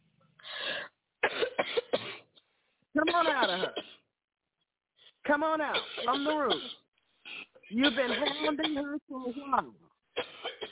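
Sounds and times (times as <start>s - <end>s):
long breathy inhale: 0.4s - 1.0s
harsh coughs: 1.2s - 2.5s, 3.1s - 4.0s, 5.7s - 8.9s, 10.1s - 10.7s
speech: 5.3s - 6.8s, 7.7s - 9.8s.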